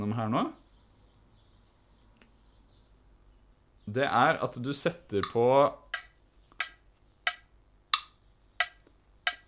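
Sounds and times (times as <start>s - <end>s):
speech: 0.0s - 0.6s, 3.9s - 5.8s
metronome ticking at a steady tempo: 5.2s - 9.4s.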